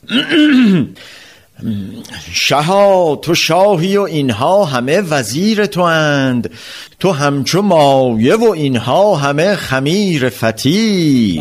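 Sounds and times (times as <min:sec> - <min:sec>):
man clearing his throat with a voiced ahem: 0:00.0 - 0:01.0
speech: 0:00.0 - 0:11.3.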